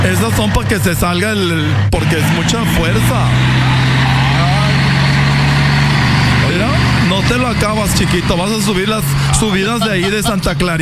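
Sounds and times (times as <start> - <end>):
Dina truck engine running: 0.0 - 10.8
speech: 0.2 - 4.5, 7.1 - 10.8
laughter: 7.2 - 10.8.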